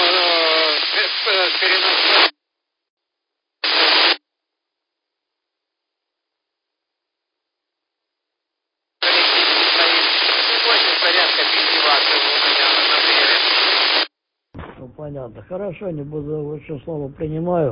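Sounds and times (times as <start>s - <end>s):
band-limited radio static on an amateur radio transceiver: 0.0s - 2.3s, 3.6s - 4.2s, 9.0s - 14.1s
speech: 1.5s - 2.3s, 15.1s - 17.6s.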